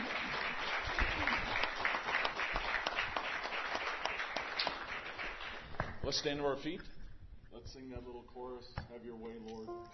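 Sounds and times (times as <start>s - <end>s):
church audience applauding: 0.0s - 6.0s
speech: 6.1s - 7.0s, 7.7s - 9.9s.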